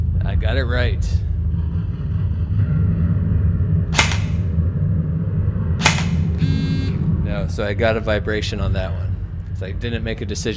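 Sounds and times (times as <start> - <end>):
steady low rumble: 0.0 - 10.5
speech: 0.4 - 1.3, 7.6 - 10.5
M4 assault rifle shots in a training simulation: 4.0 - 4.5, 5.8 - 6.4.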